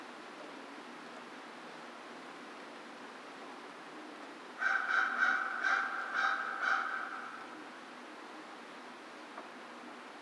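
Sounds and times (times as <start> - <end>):
American crow giving harsh caws: 4.6 - 7.6.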